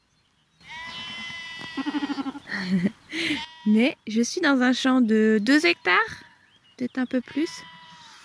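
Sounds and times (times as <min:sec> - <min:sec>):
faint outdoor ambience: 0:00.0 - 0:08.2
sheep bleating: 0:00.7 - 0:02.4, 0:03.2 - 0:03.8, 0:07.3 - 0:08.2
laughter: 0:01.8 - 0:03.0
speech: 0:02.6 - 0:06.2, 0:06.8 - 0:07.7.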